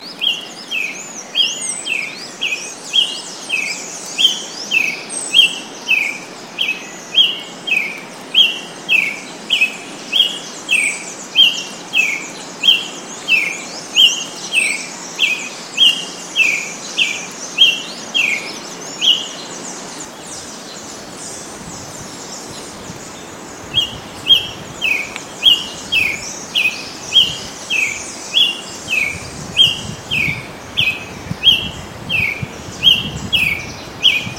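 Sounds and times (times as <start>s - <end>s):
Brazilian tanager Ramphocelus bresilius calling: 0.0s - 34.3s.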